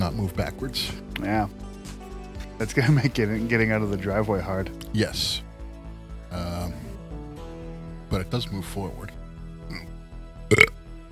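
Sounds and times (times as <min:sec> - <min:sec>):
speech: 0:00.1 - 0:01.6, 0:02.6 - 0:05.4, 0:08.1 - 0:09.8
short loud burp: 0:10.5 - 0:10.8.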